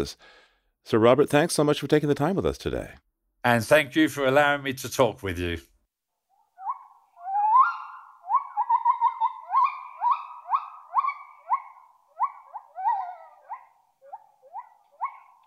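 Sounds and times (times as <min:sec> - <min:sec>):
speech: 0:00.0 - 0:05.7
gibbon howling call with rising musical whoops: 0:06.6 - 0:15.4.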